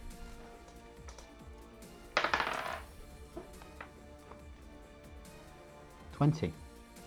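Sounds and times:
dice clattering and rattling across a table: 0:02.2 - 0:03.9.

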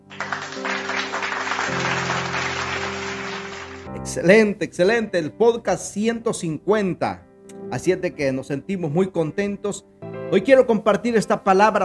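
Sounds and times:
crowd applause: 0:00.0 - 0:03.9
speech: 0:04.1 - 0:11.8.

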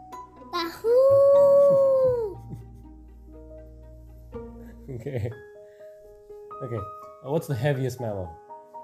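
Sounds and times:
wolf howling: 0:00.8 - 0:02.4
speech: 0:05.0 - 0:05.5, 0:06.6 - 0:08.4.

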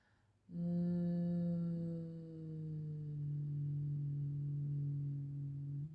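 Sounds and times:
closed-mouth humming: 0:00.5 - 0:05.9.

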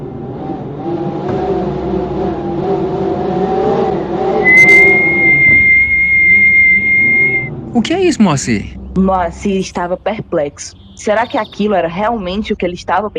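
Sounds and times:
low rumble of a car engine: 0:00.0 - 0:13.1
loud piercing whistle: 0:04.4 - 0:07.5
speech: 0:07.8 - 0:13.1.

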